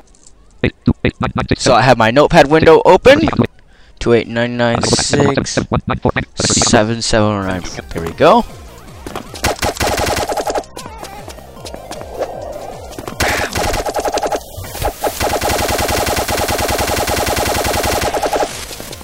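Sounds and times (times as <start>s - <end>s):
speech: 1.1s - 9.2s
automatic gunfire in a video game: 9.4s - 10.7s, 13.2s - 18.7s.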